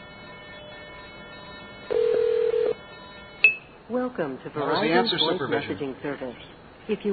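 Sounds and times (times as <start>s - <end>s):
synthesized telephone trunk wink supervision signaling tone from a chip: 0.0s - 3.6s
speech: 3.9s - 7.1s.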